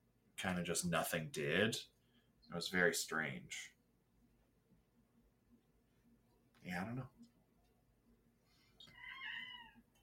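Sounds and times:
low hum: 0:00.0 - 0:10.0
speech: 0:00.4 - 0:03.8, 0:06.6 - 0:07.2
cat meowing: 0:08.8 - 0:10.0.

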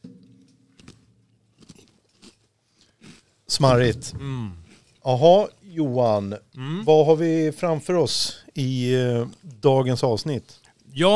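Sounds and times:
crispy biscuits being bitten and chewed: 0:00.8 - 0:03.7
speech: 0:03.5 - 0:11.1.

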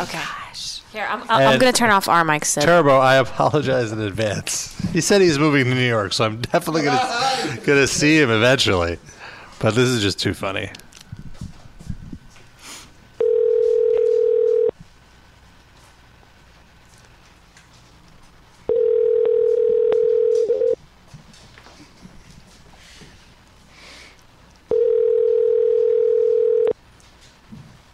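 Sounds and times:
speech: 0:00.0 - 0:10.9
telephone ringback tone on an outgoing call: 0:13.2 - 0:14.7, 0:18.7 - 0:20.8, 0:24.7 - 0:26.8.

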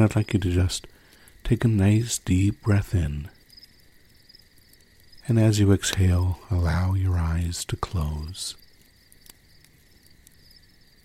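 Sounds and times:
speech: 0:00.0 - 0:03.4, 0:05.3 - 0:08.6
chorus of crickets chirping: 0:00.0 - 0:11.0
soft brief crackling pops: 0:00.0 - 0:11.0.

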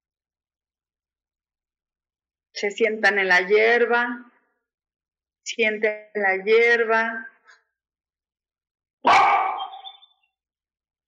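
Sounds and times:
speech: 0:02.6 - 0:04.3, 0:05.5 - 0:07.3
dog barking: 0:09.0 - 0:10.0.

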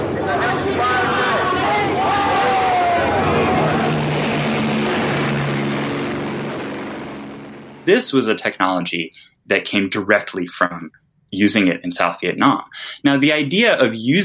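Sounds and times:
crowd shouting and murmuring: 0:00.0 - 0:04.5
helicopter engine and rotor hovering overhead: 0:00.0 - 0:09.2
speech: 0:07.9 - 0:14.2.

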